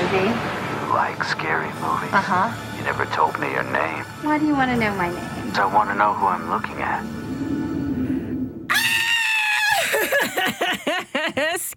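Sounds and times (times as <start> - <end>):
speech: 0.1 - 7.6
piercing scream: 8.7 - 10.2
laughter: 9.7 - 11.7.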